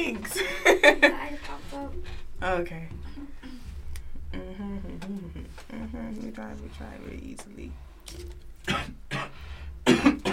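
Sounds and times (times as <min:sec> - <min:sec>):
speech: 0:00.0 - 0:01.1, 0:01.8 - 0:03.2, 0:04.3 - 0:09.0
person coughing harshly: 0:08.6 - 0:10.3.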